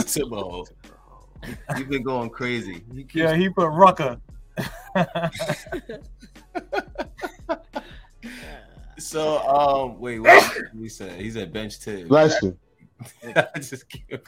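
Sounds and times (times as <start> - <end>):
rapid talking: 0.0 - 0.7, 1.4 - 14.2
speech: 0.1 - 14.2
laughter: 1.4 - 2.6, 4.6 - 8.6, 12.2 - 14.2
loud sneeze: 10.3 - 10.7.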